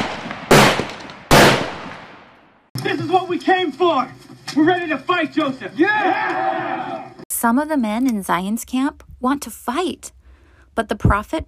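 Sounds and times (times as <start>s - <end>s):
gunshots with rolling echo: 0.0s - 2.5s
speech: 2.8s - 6.5s, 7.4s - 10.2s, 10.8s - 11.4s.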